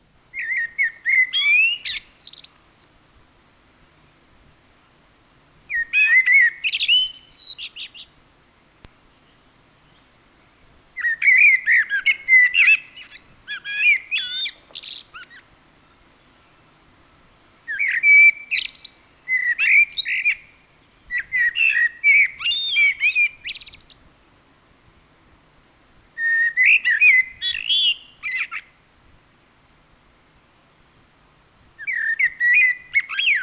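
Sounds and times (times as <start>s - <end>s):
common blackbird singing: 0.3s - 3.2s, 5.7s - 8.2s, 9.0s - 24.1s, 26.2s - 28.8s, 31.8s - 33.4s.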